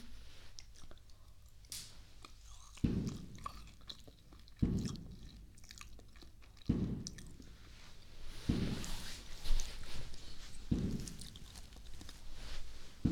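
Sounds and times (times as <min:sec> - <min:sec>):
soft chewing and biting on freshly cut dragon fruit: 0:00.4 - 0:13.0.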